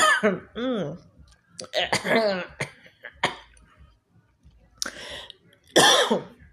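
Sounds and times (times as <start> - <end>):
person coughing after eating sunflower seeds: 0.0 - 0.5, 1.8 - 3.5, 5.8 - 6.3.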